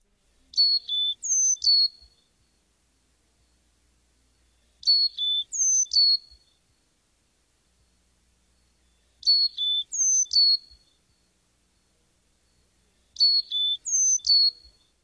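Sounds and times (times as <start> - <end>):
Carolina chickadee singing its whistled four-note song: 0.3 - 2.7, 4.4 - 6.6, 8.6 - 15.0.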